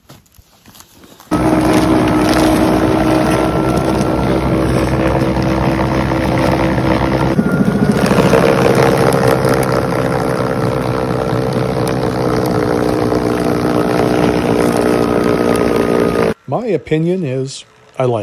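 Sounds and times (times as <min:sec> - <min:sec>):
battery-powered snowblower running: 0:01.3 - 0:18.2
speech: 0:16.8 - 0:18.2.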